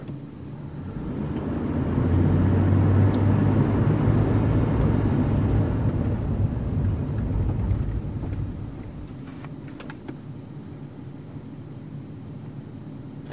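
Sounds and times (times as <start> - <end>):
SUV engine accelerating: 0.7 - 9.2.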